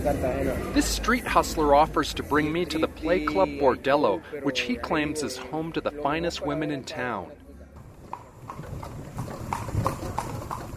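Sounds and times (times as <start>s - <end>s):
speech: 0.0s - 7.4s
horse hooves of a horse-drawn carriage on a street in Cartagena Colombia: 7.8s - 10.7s.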